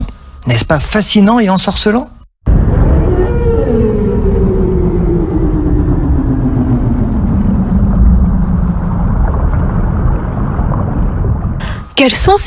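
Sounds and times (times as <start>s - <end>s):
speech: 0.5s - 2.2s, 12.0s - 12.4s
heavy rumble of deep underwater noise: 2.5s - 11.9s
blue whale moaning: 2.6s - 10.4s.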